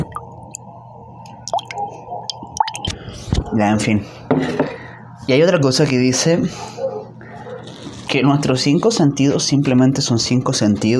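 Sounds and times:
small squishy splashes: 0.0s - 3.0s
soft wet drips: 0.0s - 3.0s
coffee sloshing and swirling inside a turned cup: 0.0s - 3.5s
speech: 3.2s - 6.8s, 8.1s - 10.9s.

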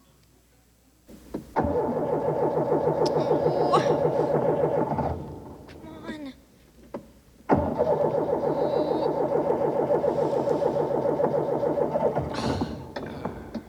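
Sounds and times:
car engine cranking without catching: 1.3s - 5.8s, 7.5s - 13.6s.

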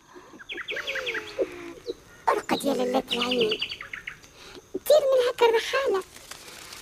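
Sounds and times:
small bird chirping: 0.1s - 5.0s
speech: 2.6s - 3.8s, 4.9s - 6.1s.

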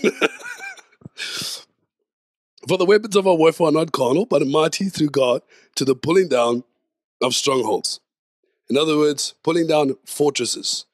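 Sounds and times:
speech: 0.0s - 0.4s, 2.7s - 8.0s, 8.7s - 10.9s
laughter: 0.0s - 1.6s
short breathy vocal sound: 1.0s - 1.7s.

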